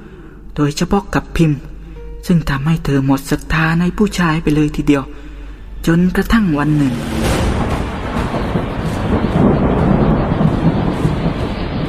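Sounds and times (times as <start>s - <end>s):
speech: 0.6s - 5.2s, 5.8s - 7.4s
deep rolling rumble of thunder: 6.5s - 11.8s
heavy rain downpour hissing: 6.7s - 11.8s.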